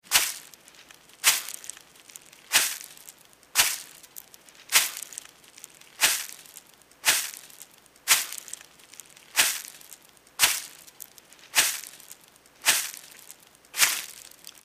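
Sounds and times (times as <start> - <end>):
slow footsteps on grass: 0.0 - 14.6.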